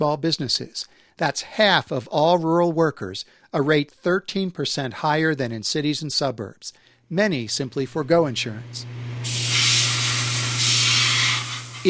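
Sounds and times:
speech: 0.0 - 9.6
chrome plating sprayed onto plastic wheel caps: 9.0 - 11.8.

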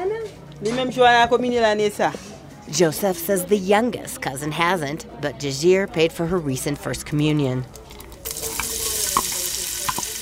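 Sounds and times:
speech: 0.6 - 7.8
spaghetti with onions and chilies sizzling in a pan: 8.2 - 10.2.

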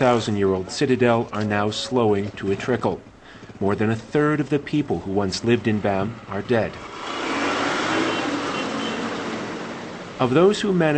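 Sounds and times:
speech: 0.0 - 7.2, 10.2 - 10.9
trucks pulling out along a main road after an earthquake: 0.0 - 10.9.

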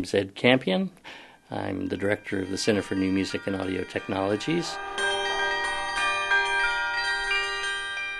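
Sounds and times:
speech: 0.0 - 5.1
tower bells ringing: 1.6 - 8.1.

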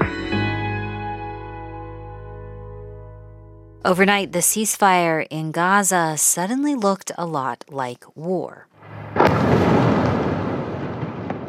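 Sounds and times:
speech: 3.8 - 8.7
Israeli airstrike explosion at night in Gaza City: 8.8 - 11.4.

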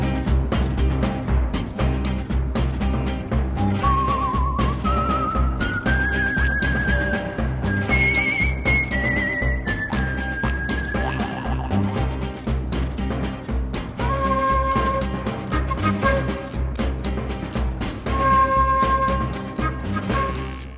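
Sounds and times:
dense rhythmic orchestral backing: 0.0 - 20.7
human whistling a melody in a film score: 3.6 - 11.9, 14.0 - 16.8, 18.1 - 20.7.

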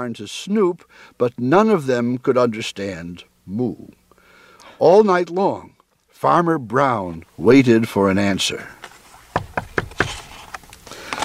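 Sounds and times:
speech: 0.0 - 4.0, 4.8 - 8.8
faint steady hiss: 0.0 - 11.2
duck knocking on a farmhouse door: 9.4 - 10.1.

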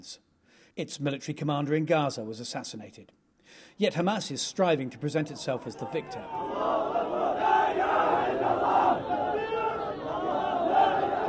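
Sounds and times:
speech: 0.0 - 6.7
crowd of hundreds of young men chanting in unison while marching through the streets: 5.6 - 11.2.

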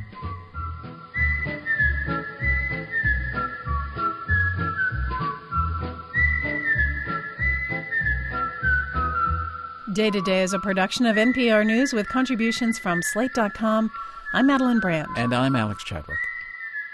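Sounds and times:
bouncing bass-and-percussion backing: 0.0 - 9.5
whistled TV theme tune: 0.0 - 16.9
speech: 10.0 - 16.2.

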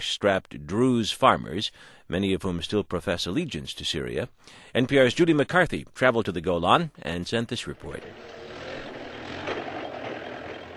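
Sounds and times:
speech: 0.0 - 8.4
broad road noise: 7.8 - 10.7
heavy trucks loaded with apples rolling across a border: 7.8 - 10.7.

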